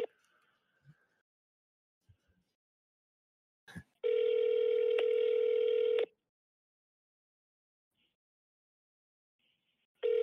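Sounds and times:
phone ringback tone: 4.0 - 6.1, 10.0 - 10.2.

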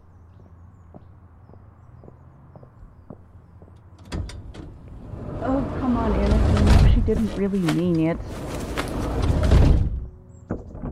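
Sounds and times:
door shut hard: 4.0 - 10.1
speech: 7.1 - 8.5.

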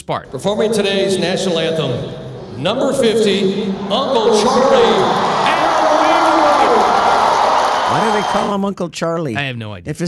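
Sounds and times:
speech: 0.1 - 5.3, 7.9 - 10.0
full stadium crowd of fans cheering: 0.5 - 8.6
scattered shouts and whoops from stadium crowd: 3.7 - 8.6.

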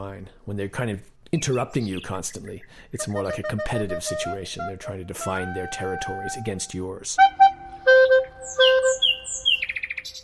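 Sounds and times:
speech: 0.0 - 7.5, 8.4 - 9.0
nightingale singing: 1.3 - 10.2.

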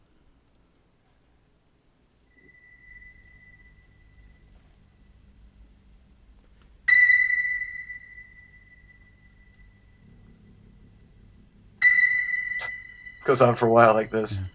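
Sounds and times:
bright sonar-like ping: 2.3 - 5.4, 6.9 - 14.5
faint low murky wash of music: 2.3 - 14.5
speech: 13.3 - 14.5.

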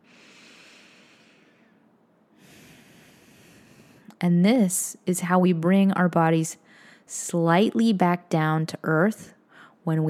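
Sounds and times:
slow deep belly breathing during a guided relaxation exercise: 0.0 - 4.1
speech: 4.2 - 10.0.

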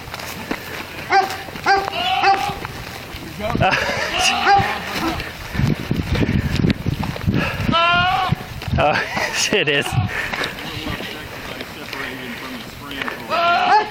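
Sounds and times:
noisy rustling outdoor background: 0.0 - 13.9
goat crying like a man yelling for help: 1.1 - 2.7, 4.0 - 5.2, 7.7 - 8.5, 13.3 - 13.9
laughter: 3.3 - 5.4, 8.8 - 13.9
speech: 3.4 - 5.3, 8.8 - 10.4.

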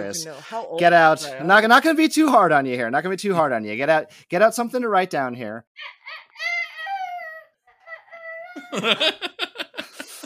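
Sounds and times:
speech: 0.0 - 6.5, 8.6 - 9.4
young child giggling breathily: 5.8 - 10.2.

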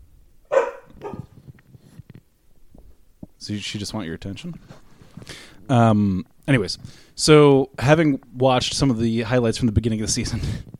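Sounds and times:
dog barking: 0.5 - 1.3
shuffling noise: 0.8 - 3.0, 4.2 - 5.8
speech: 3.4 - 10.7.

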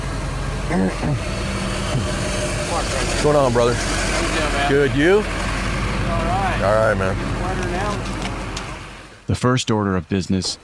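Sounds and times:
car engine rumbling while backing up to park in a parking lot: 0.0 - 9.3
speech: 0.7 - 5.4, 6.6 - 8.2, 9.3 - 10.6.

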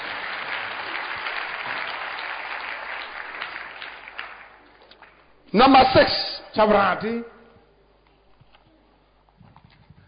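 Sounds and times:
church congregation applauding as a clap offering: 0.0 - 6.0
speech: 5.5 - 7.4.

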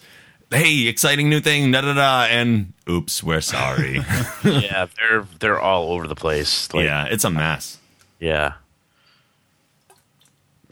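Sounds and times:
speech: 0.5 - 8.6
laughter: 3.5 - 5.0
person gulping a drink: 9.8 - 10.7
small liquid clicks: 9.8 - 10.7.

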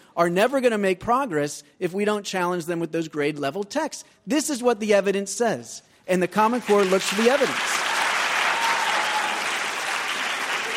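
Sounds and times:
speech: 0.2 - 7.8
audience applauding at a debate: 6.5 - 10.7.

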